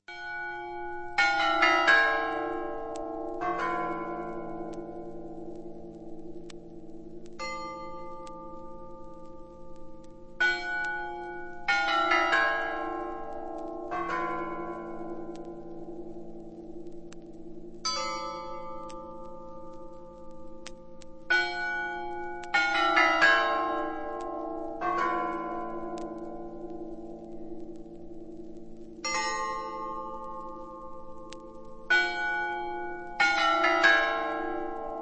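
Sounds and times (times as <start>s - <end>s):
Kremlin clock tower chimes ringing: 0.1s - 5.4s, 7.4s - 9.6s, 10.4s - 16.4s, 17.8s - 20.2s, 21.3s - 26.8s, 29.0s - 31.2s, 31.8s - 35.0s.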